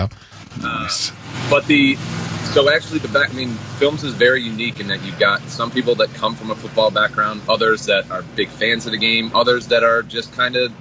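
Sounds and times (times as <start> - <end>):
speech: 0.0 - 10.7
voice-like tones: 0.0 - 10.7
truck rumbling past with a low engine drone: 0.3 - 10.7.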